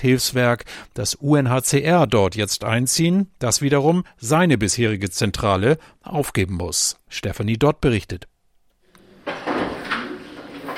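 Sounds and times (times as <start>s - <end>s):
speech: 0.0s - 8.3s
office drawers sliding open and being emptied, scraping and rattling: 9.0s - 10.7s.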